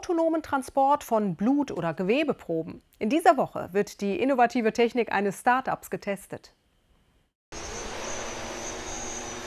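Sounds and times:
speech: 0.0 - 6.6
autonomous transport drone rotors whirring on takeoff from hospital: 7.6 - 9.4.

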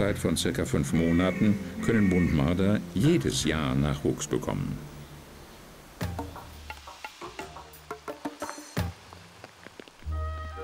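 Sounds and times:
speech: 0.0 - 4.9
raindrops pattering on a hard surface: 6.2 - 10.2.

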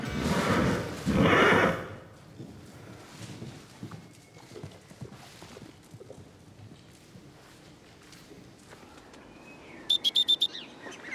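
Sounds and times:
horse neighing: 0.0 - 2.1
horse hoof clops: 0.0 - 9.2
bird chirps: 9.0 - 11.1.

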